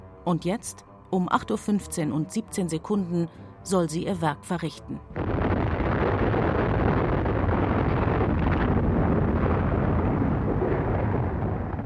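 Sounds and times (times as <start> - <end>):
speech: 0.2 - 5.5
atomic bomb explosion roar: 5.2 - 11.8.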